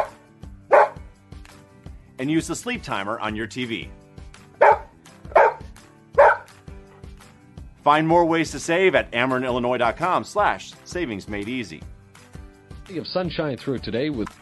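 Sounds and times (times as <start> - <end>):
dog barking: 0.0 - 1.0, 4.6 - 6.5
speech: 2.2 - 4.0, 7.9 - 11.9, 12.9 - 14.4.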